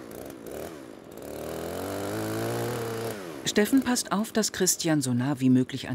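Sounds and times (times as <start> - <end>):
chainsaw engine revving while cutting branches: 0.0 - 4.7
speech: 3.5 - 5.9.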